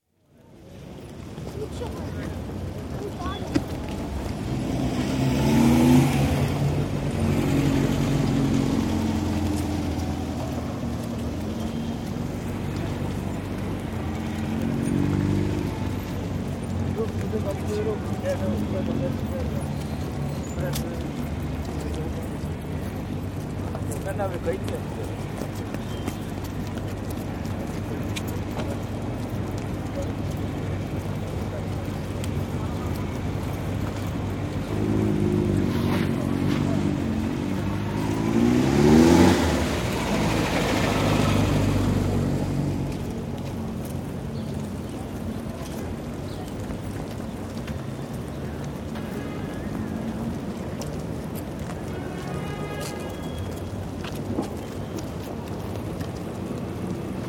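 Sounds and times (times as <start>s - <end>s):
city traffic in Istanbul: 0.0s - 57.2s
footsteps on an Istanbul street: 0.0s - 57.2s
street voices in Istanbul: 0.4s - 57.2s.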